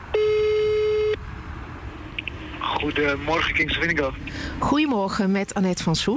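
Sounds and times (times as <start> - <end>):
long steady electronic phone ringing tone on the line: 0.1 - 1.2
speech: 2.8 - 6.1.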